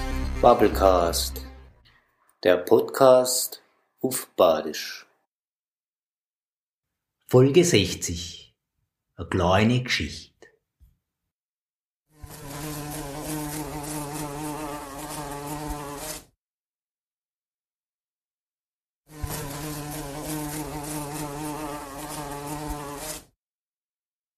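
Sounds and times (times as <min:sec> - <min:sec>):
fat fly buzzing loudly: 0:00.0 - 0:01.7, 0:12.1 - 0:16.4, 0:19.1 - 0:23.4
speech: 0:00.4 - 0:01.4, 0:02.4 - 0:05.0, 0:07.3 - 0:08.4, 0:09.2 - 0:10.3.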